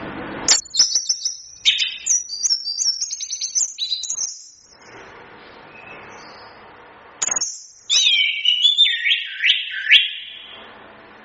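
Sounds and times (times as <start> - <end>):
Chestnut-capped thrush song with sustained whistled phrase: 0.5 - 4.9, 5.7 - 6.6, 7.2 - 10.6.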